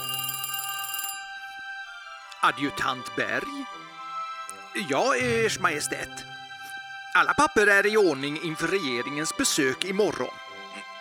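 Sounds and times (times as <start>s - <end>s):
bell rung from a bedchamber to summon an adjutant: 0.0s - 1.4s
speech: 2.4s - 4.0s, 4.7s - 6.4s, 7.1s - 10.4s.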